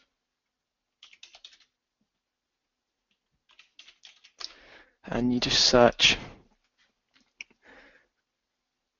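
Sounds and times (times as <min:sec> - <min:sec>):
typing a user name on a computer keyboard: 0:01.0 - 0:01.8, 0:03.1 - 0:04.6
speech: 0:05.0 - 0:06.3.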